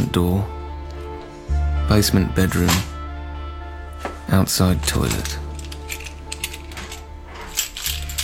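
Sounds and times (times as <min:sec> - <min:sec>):
speech: 0:00.1 - 0:00.6, 0:01.9 - 0:02.9, 0:04.3 - 0:05.4
set of three heavy metal keys being put down: 0:04.8 - 0:08.2.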